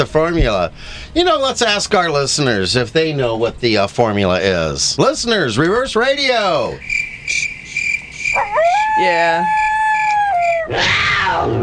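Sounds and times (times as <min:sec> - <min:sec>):
speech: 0:00.0 - 0:07.5, 0:09.0 - 0:09.6, 0:10.7 - 0:11.6
cricket chirping with high-pitched trill: 0:06.4 - 0:10.7.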